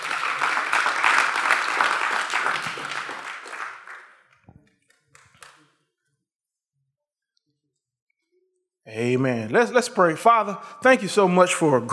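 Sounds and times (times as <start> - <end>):
roomful of people clapping: 0.0 - 5.8
speech: 9.0 - 11.9.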